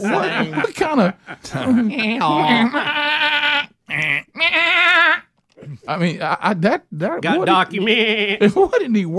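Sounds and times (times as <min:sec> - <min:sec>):
laughter: 0:00.0 - 0:03.0
speech: 0:00.0 - 0:05.2, 0:05.9 - 0:09.1
goat bleating: 0:01.7 - 0:05.3, 0:07.4 - 0:08.4.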